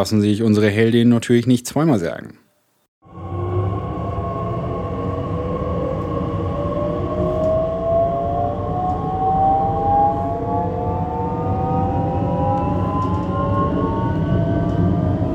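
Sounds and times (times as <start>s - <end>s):
speech: 0.0s - 2.4s
train rumbling into a station: 3.1s - 15.3s
train electric motors whining: 3.2s - 15.3s.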